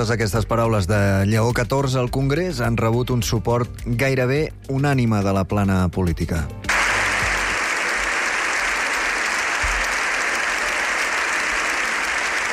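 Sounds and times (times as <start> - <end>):
speech: 0.0 - 6.7
long standing ovation from a large crowd in a parliament chamber: 6.7 - 12.5.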